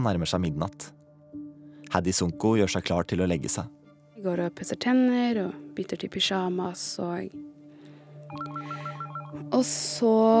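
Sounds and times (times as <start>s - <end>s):
speech: 0.0s - 1.0s, 1.9s - 7.5s, 8.3s - 10.3s
landline house telephone ringing with electronic trill: 8.3s - 9.5s.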